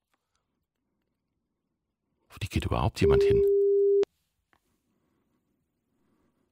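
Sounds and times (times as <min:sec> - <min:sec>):
speech: 0:02.4 - 0:03.5
electronic telephone ringback tone on outgoing call: 0:03.1 - 0:04.1.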